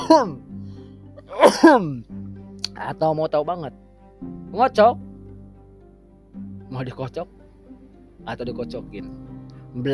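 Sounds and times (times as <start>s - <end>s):
person coughing harshly: 0.0s - 0.4s, 1.3s - 2.0s
speech: 0.1s - 0.4s, 1.3s - 2.2s, 2.8s - 5.1s, 6.4s - 7.4s, 8.2s - 9.9s.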